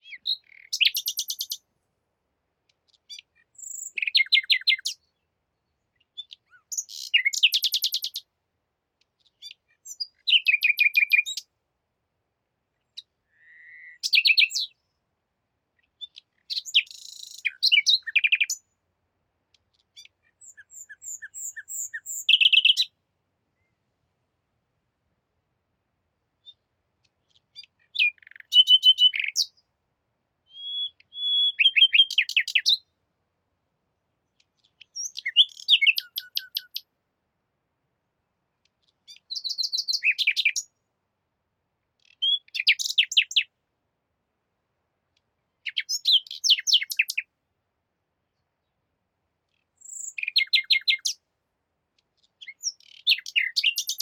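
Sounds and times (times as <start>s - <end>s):
bird song in Spain: 0.0s - 1.7s, 2.6s - 8.3s, 9.0s - 11.6s, 12.6s - 18.8s, 19.4s - 24.0s, 26.4s - 29.8s, 30.4s - 33.0s, 34.2s - 36.9s, 38.4s - 40.9s, 41.8s - 43.6s, 45.1s - 47.3s, 48.2s - 51.3s, 52.0s - 54.0s.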